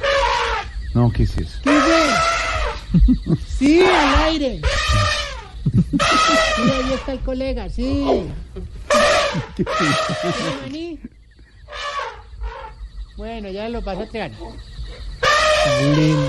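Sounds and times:
elephant-like trumpeting: 0:00.0 - 0:00.8, 0:01.6 - 0:02.9, 0:03.8 - 0:07.2, 0:08.1 - 0:10.8, 0:11.6 - 0:12.8, 0:15.2 - 0:16.2
speech: 0:01.0 - 0:11.8, 0:13.2 - 0:14.7, 0:15.6 - 0:16.2
laughter: 0:02.8 - 0:03.7, 0:04.9 - 0:07.1, 0:08.9 - 0:11.1.

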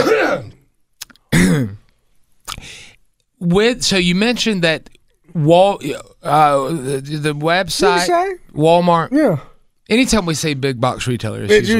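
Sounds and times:
breathy cough-like exhale: 0:00.0 - 0:00.6, 0:01.3 - 0:01.8
rough voiced throat clearing: 0:00.0 - 0:01.9
speech: 0:03.4 - 0:11.7.

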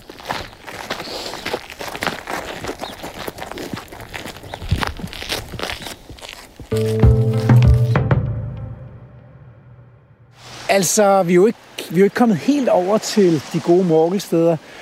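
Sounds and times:
footsteps crunching along a coastal path: 0:00.0 - 0:08.0
speech: 0:10.8 - 0:14.7.

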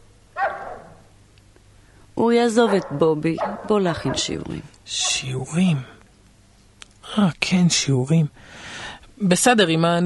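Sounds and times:
dog barking: 0:00.4 - 0:01.1, 0:02.6 - 0:05.4
speech: 0:02.2 - 0:06.0, 0:07.2 - 0:10.0.

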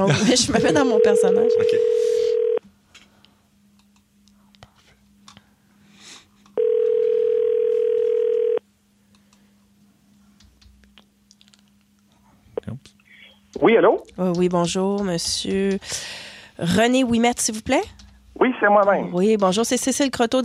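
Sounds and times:
speech: 0:00.0 - 0:02.2, 0:13.7 - 0:20.4
faint constant hum: 0:00.0 - 0:20.4
telephone tones as a call is placed: 0:00.8 - 0:02.6, 0:06.6 - 0:08.6.

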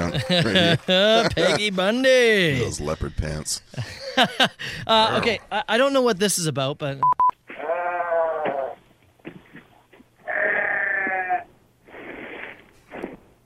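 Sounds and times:
laughter: 0:00.0 - 0:01.8, 0:03.8 - 0:05.7
speech: 0:00.1 - 0:07.2
goat bleating with wavering nasal cries: 0:07.5 - 0:08.8, 0:10.2 - 0:11.5.

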